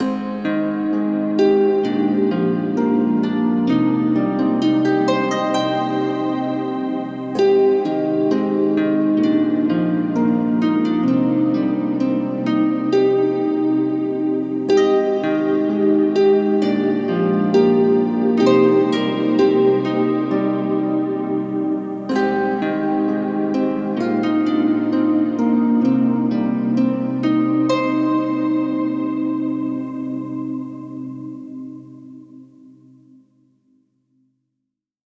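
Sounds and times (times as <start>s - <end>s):
harp playing in C minor at 65 BPM: 0.0s - 33.1s.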